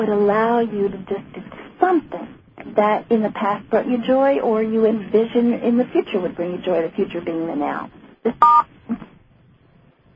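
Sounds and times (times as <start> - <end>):
speech: 0.0 - 9.1
telephone dialing tones on a call-in line: 8.3 - 8.7.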